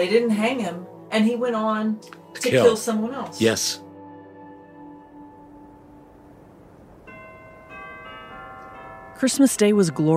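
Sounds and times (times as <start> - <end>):
speech: 0.0 - 3.8, 9.2 - 10.1
church bells ringing in overlapping peals: 4.6 - 10.1.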